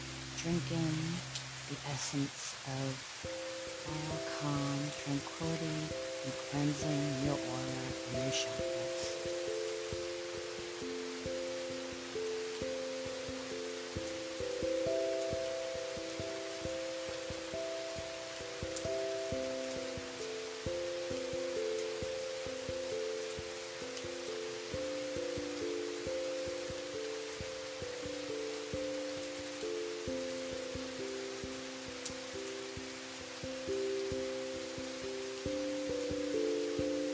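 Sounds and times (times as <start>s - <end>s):
gentle rain falling: 0.0s - 37.1s
soft sustained synth tones shifting between chords: 0.0s - 37.1s
speech: 0.4s - 9.1s.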